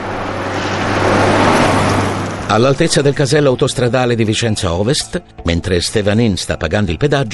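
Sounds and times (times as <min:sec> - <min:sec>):
car engine drone: 0:00.0 - 0:04.6
broadband road rumble: 0:00.0 - 0:06.7
speech: 0:02.5 - 0:07.3.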